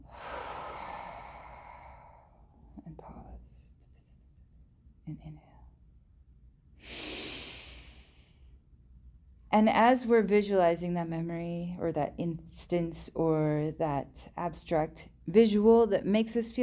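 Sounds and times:
slow deep breathing during a guided relaxation exercise: 0.0 - 2.7, 6.8 - 8.6
speech: 5.1 - 5.5, 9.5 - 16.6.

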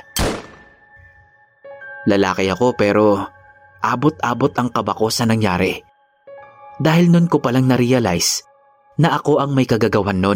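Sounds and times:
loud gunshot with tail: 0.0 - 0.9
speech: 2.0 - 5.9, 6.8 - 10.3.

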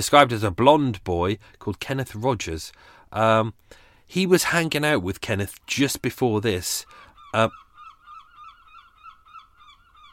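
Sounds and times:
speech: 0.0 - 7.6
seagulls squawking: 6.8 - 10.1.

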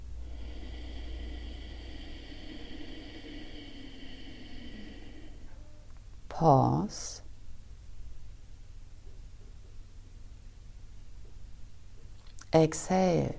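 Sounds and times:
slow deep inhalation through the nose during a breathing exercise: 0.0 - 5.9
faint hum: 0.0 - 13.3
speech: 6.4 - 7.2, 12.6 - 13.3.

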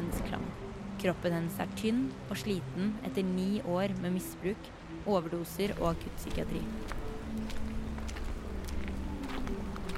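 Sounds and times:
speech: 1.0 - 7.0
quick footsteps of a woman crossing a city square: 6.4 - 9.9.

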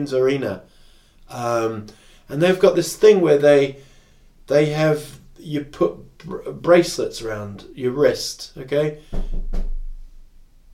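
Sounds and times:
speech: 0.0 - 3.9, 4.5 - 9.8
single dull knock on a door: 9.1 - 10.0.

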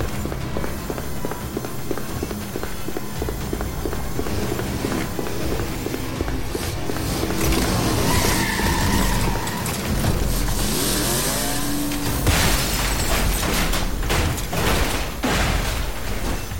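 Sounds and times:
running footsteps on hard surface: 0.0 - 10.7
rising motor sweeps: 0.0 - 12.2
mechanical grinding and whirring of battling metal giants: 0.0 - 16.5
rumbling clattering background: 0.0 - 16.5
heavy metallic impacts: 8.9 - 16.5.

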